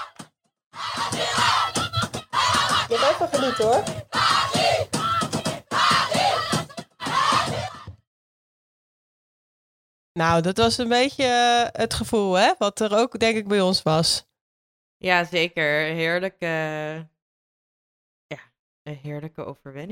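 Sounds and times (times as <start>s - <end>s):
football supporters cheering in a football stadium: 0.0s - 0.2s, 0.8s - 7.9s
speech: 3.1s - 4.1s, 10.2s - 14.3s, 15.0s - 17.1s, 18.3s - 19.9s.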